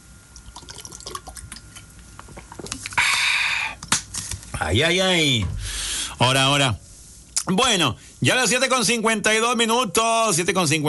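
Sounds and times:
person sipping a drink of water: 0.4s - 3.9s
speech: 4.6s - 5.6s, 6.2s - 6.8s, 7.4s - 10.8s.

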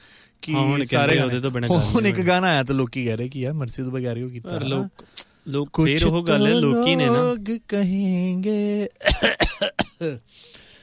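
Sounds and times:
faint breathy hiss: 0.0s - 0.4s, 4.9s - 5.6s, 10.1s - 10.8s
speech: 0.4s - 10.6s
cough: 9.0s - 10.2s.

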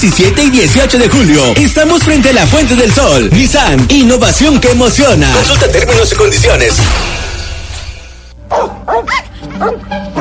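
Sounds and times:
speech: 0.0s - 7.2s, 8.6s - 10.1s
dog barking: 8.5s - 10.1s.

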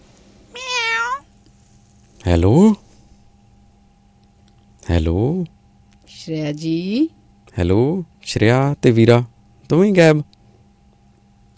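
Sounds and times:
cat meowing: 0.5s - 1.3s
speech: 2.2s - 2.8s, 4.9s - 10.3s.

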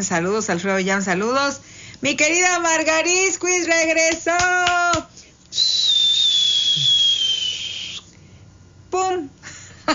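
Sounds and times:
speech: 0.0s - 5.7s
worn-out party blower whistle blast: 5.5s - 8.1s.

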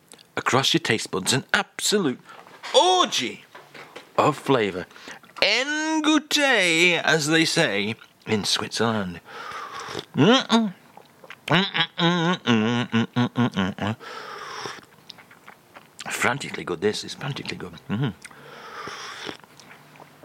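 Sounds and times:
speech: 0.5s - 2.4s, 3.0s - 3.5s, 4.2s - 10.8s, 11.5s - 14.3s, 16.2s - 18.3s
chewing and chomping of a biscuit with a vanilla centre: 7.9s - 8.3s, 10.8s - 11.6s, 14.4s - 16.6s, 17.2s - 20.2s.

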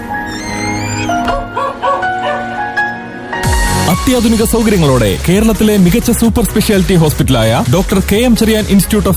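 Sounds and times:
dog yapping and whimpering in short high yelps: 0.2s - 2.6s
speech: 4.0s - 9.1s.

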